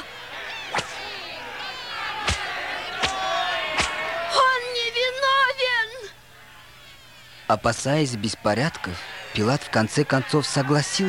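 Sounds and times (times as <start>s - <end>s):
large angry crowd roaring and shouting: 0.0s - 11.0s
whip-like cracks: 3.8s - 4.0s
speech: 7.5s - 11.0s.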